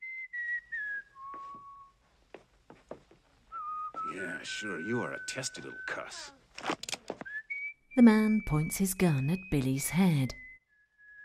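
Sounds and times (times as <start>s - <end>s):
person whistling a tune of descending notes: 0.0s - 2.0s, 3.5s - 6.2s, 7.2s - 9.5s, 10.3s - 11.2s
speech: 4.1s - 6.8s, 8.0s - 10.4s.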